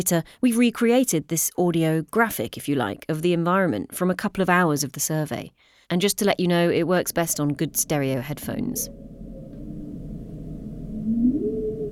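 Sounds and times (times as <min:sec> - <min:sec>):
speech: 0:00.0 - 0:09.2
low constant underwater hum: 0:08.3 - 0:11.9
humpback whale tonal call: 0:08.9 - 0:11.9.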